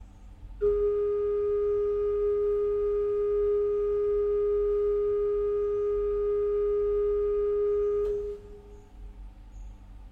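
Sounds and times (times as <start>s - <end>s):
bourdon 8 stop of the Positif pipe organ: 0.6s - 8.6s.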